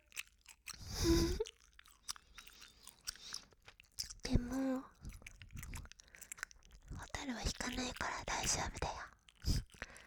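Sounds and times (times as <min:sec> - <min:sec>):
chewing gum close to the ear: 0:00.0 - 0:10.0
speech: 0:07.3 - 0:09.6.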